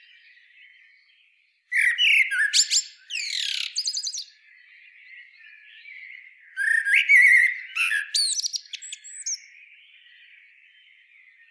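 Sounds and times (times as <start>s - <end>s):
common blackbird Turdus merula song: 0.0s - 11.4s
soft background chirps: 0.0s - 11.4s.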